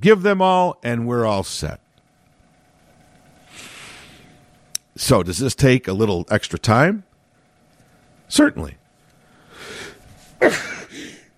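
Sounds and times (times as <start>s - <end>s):
speech: 0.0s - 1.8s, 5.0s - 7.1s, 8.3s - 8.8s, 10.4s - 11.1s
man sneezing: 10.4s - 11.3s.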